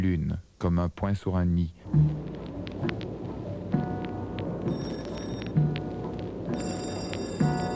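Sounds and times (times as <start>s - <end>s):
speech: 0.0s - 2.2s
low rumbling background: 1.7s - 7.7s
long sustained bell ringing: 4.7s - 5.6s, 6.5s - 7.7s.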